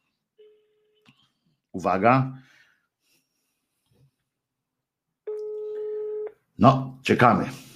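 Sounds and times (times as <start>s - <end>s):
speech: 1.8s - 2.5s, 6.6s - 7.6s
person breathing: 2.4s - 3.8s
steady electronic phone ringback tone while a call connects on the radio: 5.3s - 6.3s.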